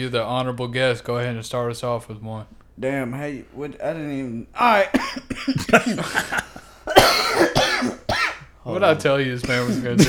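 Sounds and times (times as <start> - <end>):
speech: 0.0 - 6.4, 8.7 - 10.0
person coughing into the microphone: 5.0 - 8.4, 9.4 - 10.0.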